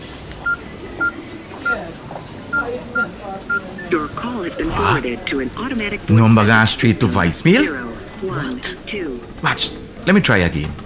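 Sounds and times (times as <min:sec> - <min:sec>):
low murmur: 0:00.0 - 0:10.8
phone keypad dialing beeps: 0:00.4 - 0:01.8, 0:02.5 - 0:04.1
speech: 0:03.5 - 0:10.8.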